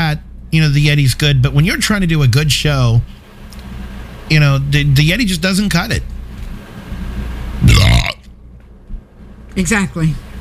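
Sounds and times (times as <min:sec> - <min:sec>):
speech: 0:00.1 - 0:03.2, 0:04.3 - 0:06.1, 0:09.6 - 0:10.2
person burping: 0:07.6 - 0:08.3.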